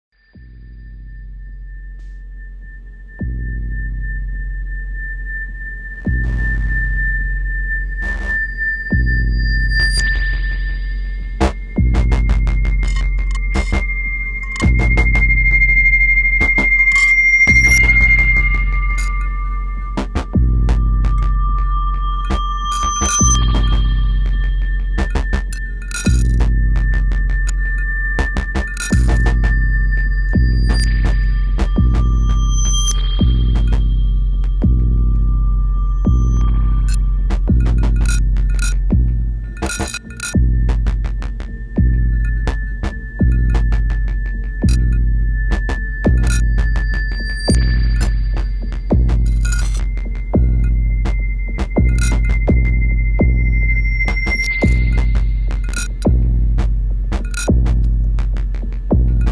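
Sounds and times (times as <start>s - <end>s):
noise: 0.1s - 59.3s
dub music: 17.5s - 59.3s.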